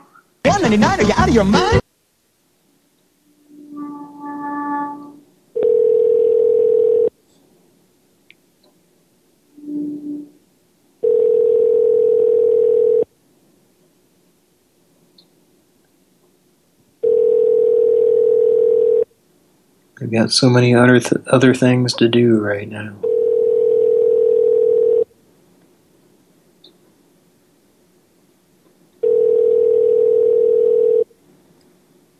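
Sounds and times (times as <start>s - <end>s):
speech: 0.5s - 1.8s, 20.2s - 23.1s
buzzy tone bursts: 3.2s - 5.3s, 9.5s - 10.4s
telephone dial tone while a number is being dialed: 5.6s - 7.1s, 11.0s - 13.1s, 17.0s - 19.1s, 23.0s - 25.1s, 29.0s - 31.1s.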